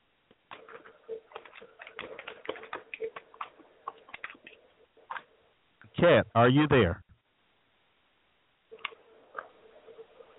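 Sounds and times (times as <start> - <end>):
typing on a computer keyboard: 0.5 - 5.2
speech: 6.0 - 7.0.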